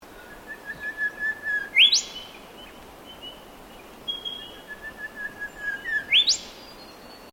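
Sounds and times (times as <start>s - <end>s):
background hiss: 0.0s - 7.3s
bird whistle with rising upsweep: 0.4s - 2.2s, 4.1s - 6.5s.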